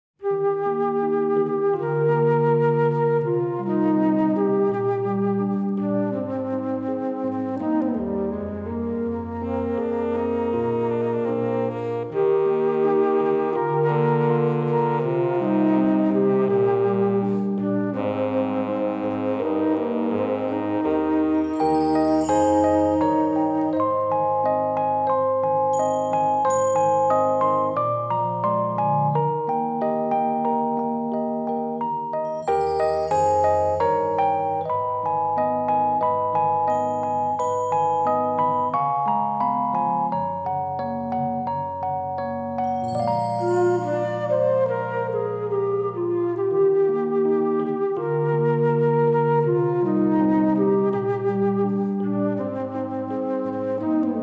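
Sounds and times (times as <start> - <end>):
flute melody: 0.2 - 54.2.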